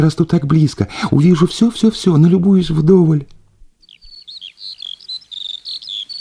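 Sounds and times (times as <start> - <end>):
speech: 0.0 - 3.4
skylark singing: 3.8 - 6.1.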